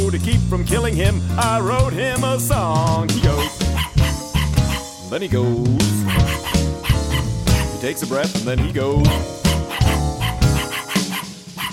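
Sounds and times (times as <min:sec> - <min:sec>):
speech: 0:00.2 - 0:03.9, 0:05.1 - 0:06.7, 0:07.8 - 0:09.4
small wiener dog yapping: 0:03.4 - 0:04.9, 0:06.1 - 0:07.7, 0:09.2 - 0:11.7.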